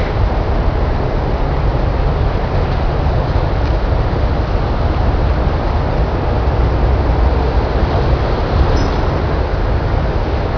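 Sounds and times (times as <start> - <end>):
street ambience: 0.0 - 10.5.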